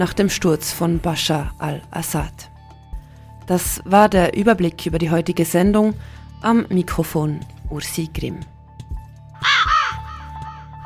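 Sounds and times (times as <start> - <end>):
speech: 0.0 - 2.5, 3.5 - 8.5
raven cawing: 9.4 - 10.8.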